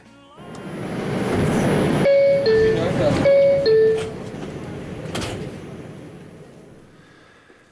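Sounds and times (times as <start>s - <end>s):
steady rumble and hiss of a train carriage: 0.4s - 7.7s
New York subway train door chime with two descending bell-like notes: 1.6s - 6.6s.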